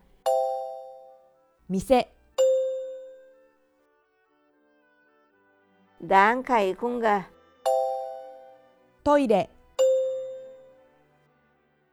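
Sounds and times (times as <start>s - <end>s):
speech: 1.7s - 2.1s, 6.0s - 7.3s, 9.0s - 9.6s
single clear chime signaling time to answer in a language practice drill: 2.4s - 3.3s, 7.7s - 8.6s, 9.8s - 10.7s.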